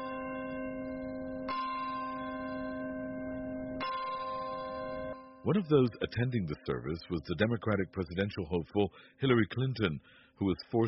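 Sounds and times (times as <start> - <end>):
Bell of Hope church bell tolling in a churchyard at a memorial: 0.0 - 7.0
speech: 5.4 - 10.8.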